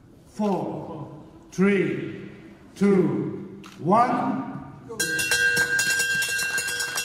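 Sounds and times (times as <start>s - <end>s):
speech: 0.4s - 2.2s, 2.8s - 5.3s
stock exchange listing bell ringing: 5.0s - 7.0s.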